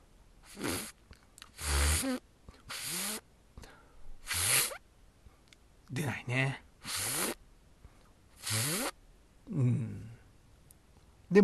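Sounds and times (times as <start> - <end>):
person beatboxing a zipper sound: 0.5 - 0.9, 1.5 - 3.2, 4.2 - 4.8, 6.8 - 7.4, 8.4 - 9.0
mouth clicks: 0.5 - 4.8, 8.0 - 9.0
speech: 2.0 - 2.2, 5.9 - 6.6.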